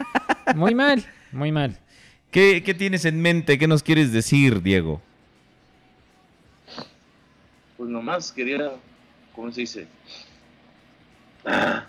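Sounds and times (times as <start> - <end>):
laughter: 0.0 - 0.8
speech: 0.5 - 5.1, 6.7 - 6.9, 7.8 - 10.3, 11.4 - 11.8
faint brief sniffle: 6.6 - 7.0, 10.0 - 10.4
loud breathy exhalation through the nose: 6.7 - 7.0.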